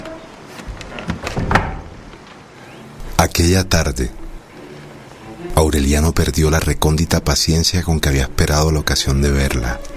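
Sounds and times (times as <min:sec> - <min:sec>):
door swinging shut with soft thuds: 0:00.9 - 0:02.0
speech: 0:03.2 - 0:04.2, 0:05.6 - 0:09.9.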